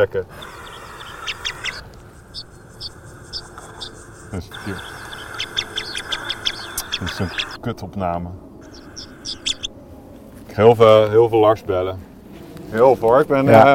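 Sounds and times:
speech: 0:00.0 - 0:00.6, 0:04.3 - 0:05.0, 0:07.0 - 0:08.5, 0:10.6 - 0:12.1, 0:12.7 - 0:13.7
pipit flight calls: 0:00.0 - 0:07.6, 0:08.6 - 0:09.8
wind rumble: 0:00.0 - 0:13.7.

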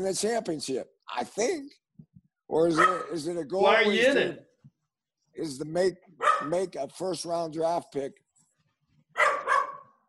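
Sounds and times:
speech: 0:00.0 - 0:01.8, 0:02.5 - 0:04.5, 0:05.4 - 0:08.2
female dog double bark: 0:02.8 - 0:03.2, 0:06.2 - 0:06.6, 0:09.1 - 0:10.0.

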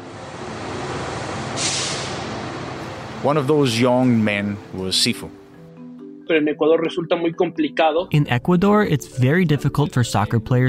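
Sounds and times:
bus carrying teenagers idling outside a football club: 0:00.0 - 0:04.8
bus air brakes hissing: 0:01.5 - 0:03.1
speech: 0:03.2 - 0:05.4, 0:06.3 - 0:10.6.

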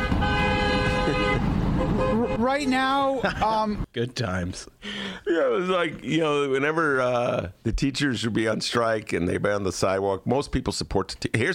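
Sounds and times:
car horn from a passing car blaring: 0:00.0 - 0:02.7
street traffic rumble in Chicago by a high school: 0:00.0 - 0:03.9
speech: 0:02.2 - 0:11.5.

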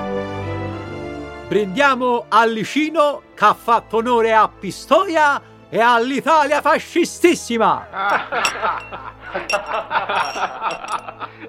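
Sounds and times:
speech: 0:01.5 - 0:11.4
glasses clinking in a toast: 0:08.1 - 0:11.2.

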